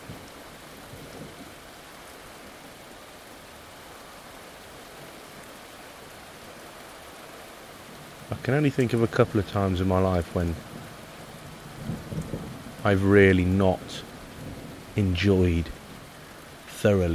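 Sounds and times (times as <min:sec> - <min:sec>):
heavy rain: 0:00.0 - 0:17.1
speech: 0:08.3 - 0:10.7, 0:12.8 - 0:14.1, 0:15.0 - 0:15.8, 0:16.8 - 0:17.1
distant thunder: 0:11.5 - 0:15.8.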